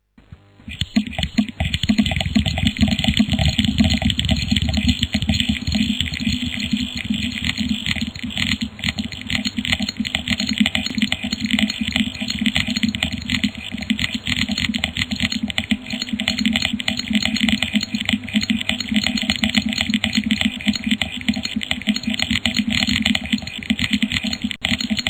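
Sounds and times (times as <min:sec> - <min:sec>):
noise beats: 0:00.1 - 0:25.0.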